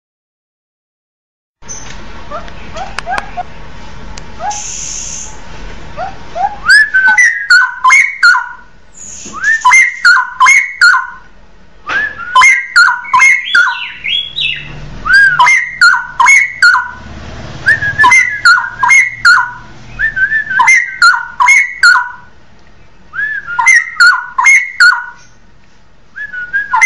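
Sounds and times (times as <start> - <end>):
Oriental magpie-robin singing whistled phrases with clicking notes: 6.0 - 11.3, 12.2 - 22.3, 23.2 - 25.4, 26.2 - 26.8.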